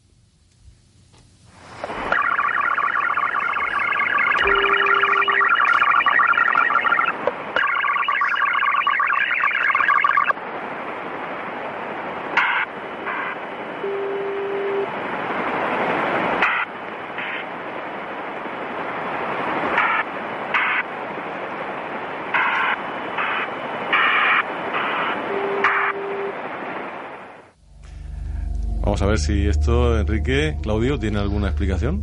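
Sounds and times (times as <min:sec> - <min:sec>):
steady hissing shortwave static on 3830 kHz upper sideband: 0:01.6 - 0:28.0
warbling tones of a strange shortwave signal on 3830 kHz: 0:01.7 - 0:11.5, 0:12.2 - 0:14.9, 0:16.3 - 0:18.6, 0:19.5 - 0:32.0
brief steady tones of a strange shortwave signal: 0:02.0 - 0:10.4, 0:12.4 - 0:15.0, 0:22.4 - 0:26.4
speech: 0:29.0 - 0:32.0.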